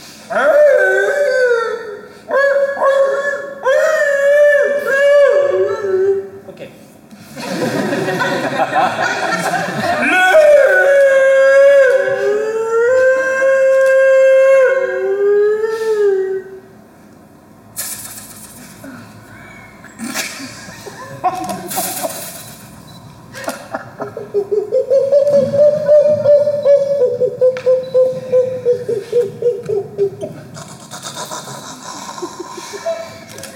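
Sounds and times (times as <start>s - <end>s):
person imitating a wolf howl as a practice attempt: 0.3s - 6.4s, 10.0s - 16.7s, 24.3s - 30.4s
laughter: 7.3s - 13.0s, 19.4s - 22.6s, 23.3s - 33.5s.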